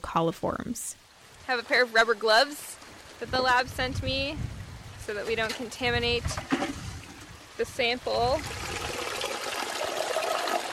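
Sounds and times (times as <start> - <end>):
speech: 0.0 - 4.5, 5.1 - 6.8, 7.6 - 8.6
tap water pouring into buckets: 6.3 - 7.6, 8.3 - 10.7.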